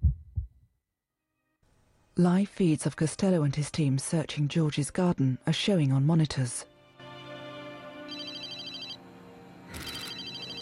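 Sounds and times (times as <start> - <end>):
speech: 2.2 - 6.7
telephone ringing in electronic bursts: 8.1 - 9.0, 9.7 - 10.6.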